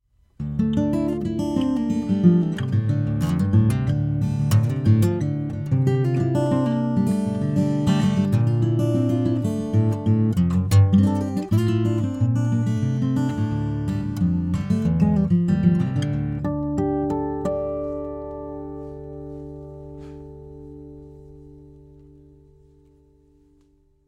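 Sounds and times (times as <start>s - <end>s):
acoustic guitar: 0.2s - 24.0s.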